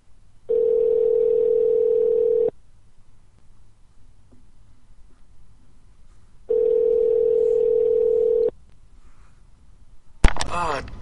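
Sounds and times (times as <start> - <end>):
ringback tones from an outgoing phone call: 0.5 - 2.5, 6.5 - 8.5.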